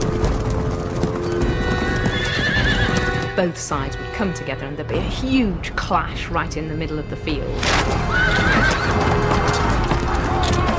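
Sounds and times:
horse hooves clip-clopping: 0:00.0 - 0:04.3, 0:07.7 - 0:10.7
horses neighing: 0:01.0 - 0:03.3, 0:07.8 - 0:10.7
speech: 0:03.4 - 0:09.6.

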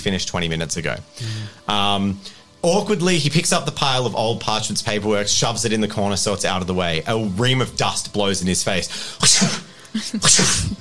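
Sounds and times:
speech: 0:00.0 - 0:10.7
person sneezing: 0:09.2 - 0:10.7.

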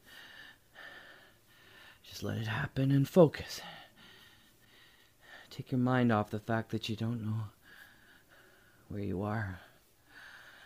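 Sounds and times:
slow deliberate breathing with a slight wheezy whistle: 0:00.0 - 0:02.1, 0:03.6 - 0:05.5, 0:07.6 - 0:08.9, 0:09.7 - 0:10.6
speech: 0:02.2 - 0:03.8, 0:05.6 - 0:07.6, 0:08.9 - 0:09.6.

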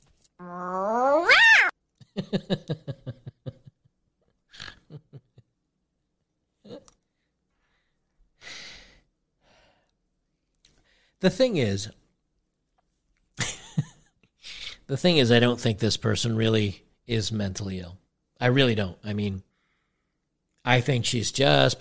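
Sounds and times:
person imitating an angry cat meow: 0:00.4 - 0:01.7
speech: 0:02.2 - 0:03.2, 0:11.2 - 0:12.0, 0:14.9 - 0:19.5, 0:20.6 - 0:21.7.

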